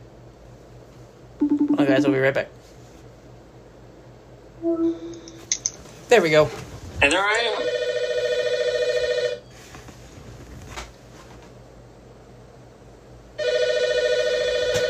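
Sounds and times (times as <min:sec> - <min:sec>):
speech: 0:01.8 - 0:02.6, 0:04.6 - 0:05.2, 0:06.1 - 0:07.8
telephone ringing in electronic bursts: 0:07.0 - 0:09.4, 0:13.4 - 0:14.8.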